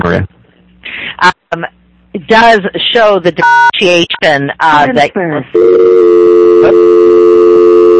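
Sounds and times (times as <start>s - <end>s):
speech: 1.2s - 6.8s
electronic telephone tones over a phone line: 5.6s - 7.9s.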